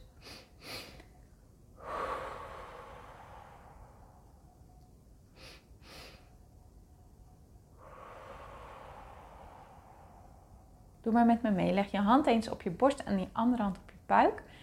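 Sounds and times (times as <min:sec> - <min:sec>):
quiet breathing in a relaxation exercise: 0:00.0 - 0:06.6, 0:07.6 - 0:11.1, 0:14.4 - 0:14.6
speech: 0:11.0 - 0:14.6.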